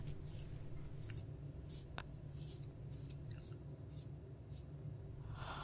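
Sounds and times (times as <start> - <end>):
scissors cutting off hair in a hotel room: 0.2 - 4.7.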